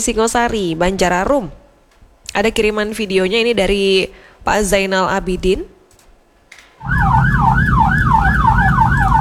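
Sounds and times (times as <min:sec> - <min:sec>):
speech: 0:00.0 - 0:01.6, 0:02.4 - 0:05.7
heavy rumble of traffic and engine noise: 0:06.8 - 0:09.1
volunteer ambulance siren wailing: 0:06.8 - 0:09.1.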